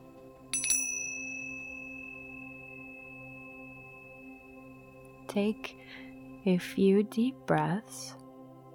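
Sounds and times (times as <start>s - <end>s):
meditation chime ringing: 0.5s - 6.6s
speech: 5.3s - 8.2s.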